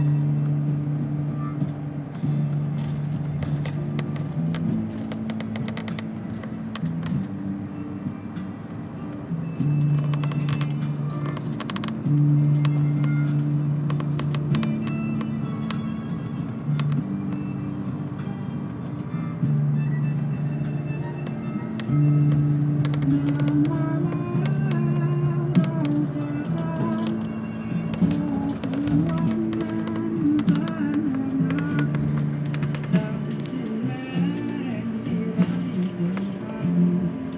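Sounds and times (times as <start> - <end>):
sleeper bus engine drone changing gear on the road: 0.0 - 37.3
short rattles and clicks inside a sleeper bus: 1.6 - 7.4, 9.8 - 17.0, 21.2 - 34.5, 35.2 - 36.6.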